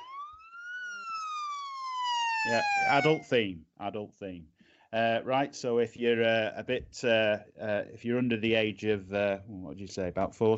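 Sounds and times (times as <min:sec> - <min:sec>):
siren wailing as a warning sound effect: 0:00.0 - 0:03.4
speech: 0:02.4 - 0:10.5.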